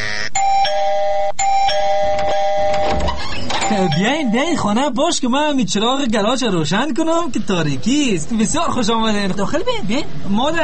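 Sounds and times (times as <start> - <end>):
electronic doorbell chime at a house gate at night: 0.4 - 3.0, 3.6 - 4.8
speech: 3.8 - 10.6.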